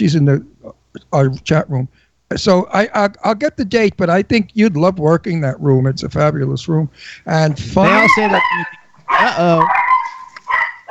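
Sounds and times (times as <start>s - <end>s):
speech: 0.0s - 9.8s
dog barking at someone at the door: 7.8s - 10.8s.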